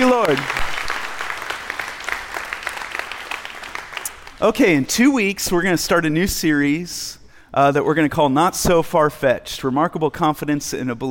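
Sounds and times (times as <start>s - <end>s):
audience clapping hands in praise: 0.0s - 4.8s
speech: 0.2s - 0.7s, 4.4s - 11.0s.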